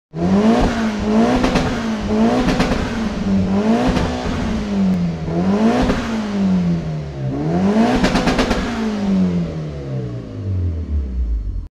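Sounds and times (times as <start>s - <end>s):
Tucson car: 0.1s - 11.7s.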